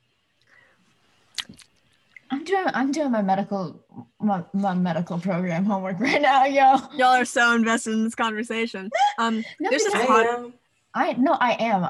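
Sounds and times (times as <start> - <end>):
person chewing food: 1.3 - 2.2
speech: 2.5 - 11.8.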